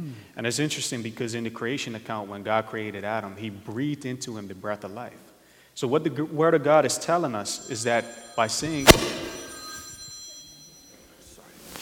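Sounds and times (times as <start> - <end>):
low noise: 0.0 - 11.8
speech: 0.3 - 9.1
telephone ringing during a sermon: 7.5 - 11.2.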